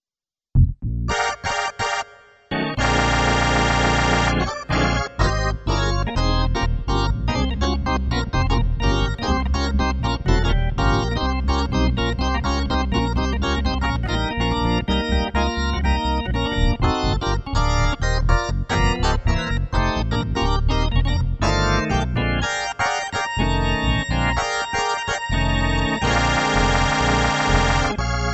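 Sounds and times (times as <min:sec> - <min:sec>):
Hammond B-3 organ: 0:01.1 - 0:28.3.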